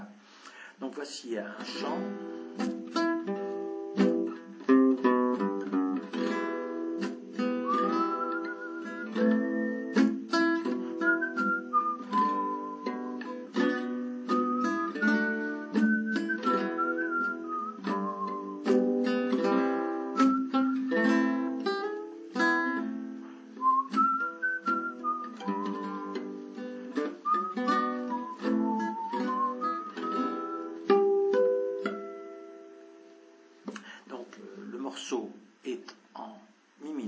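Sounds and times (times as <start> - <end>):
speech: 0.8 - 2.8
steadily plucked guitar chords: 1.8 - 33.1
person whistling a flowing melody: 7.4 - 21.5, 23.5 - 26.3, 26.9 - 31.0.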